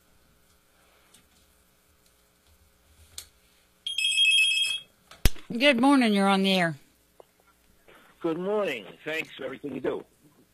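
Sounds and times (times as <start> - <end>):
steady bright electronic telephone tone: 3.9 - 4.9
speech: 5.5 - 6.8, 8.2 - 10.1.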